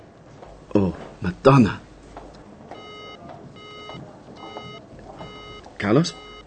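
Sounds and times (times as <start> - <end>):
faint hum: 0.0 - 6.4
speech: 1.2 - 1.8, 5.9 - 6.3
telephone call disconnected tone beeping: 2.7 - 6.4.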